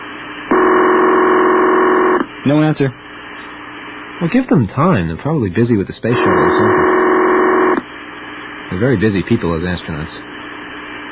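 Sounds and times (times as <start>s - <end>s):
telephone line ringing through to Houston, Texas: 0.5s - 2.3s, 6.1s - 7.8s
speech: 2.4s - 3.6s, 4.2s - 6.9s, 8.7s - 10.3s.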